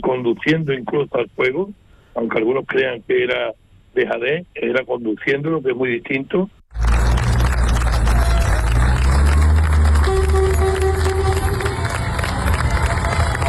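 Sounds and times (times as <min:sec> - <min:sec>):
speech: 0:00.1 - 0:07.0
townspeople cheering a farewell to military firefighting crews: 0:06.7 - 0:13.4.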